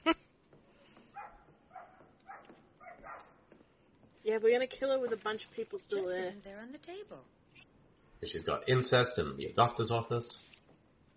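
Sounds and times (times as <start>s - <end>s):
dog barking sharply: 1.1s - 3.5s
speech: 4.3s - 7.4s, 8.2s - 10.5s.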